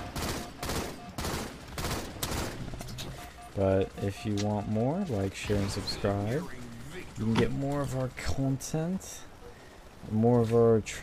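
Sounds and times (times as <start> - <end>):
video game gunfire in rapid bursts: 0.0 - 8.0
speech: 3.6 - 6.6, 7.2 - 9.3, 10.0 - 11.0.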